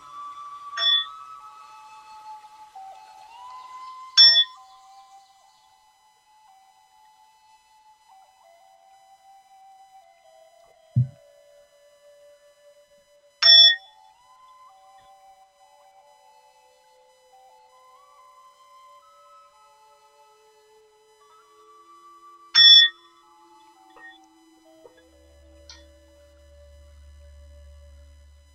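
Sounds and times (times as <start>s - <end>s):
meditation bell ringing: 0.8s - 1.1s, 4.2s - 4.6s, 24.0s - 28.0s
soft low thump: 11.0s - 11.2s.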